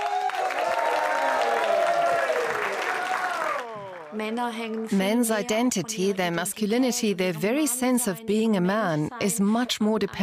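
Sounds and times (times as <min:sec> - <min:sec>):
large audience applauding at a comedy show: 0:00.0 - 0:05.6
speech: 0:04.1 - 0:10.2.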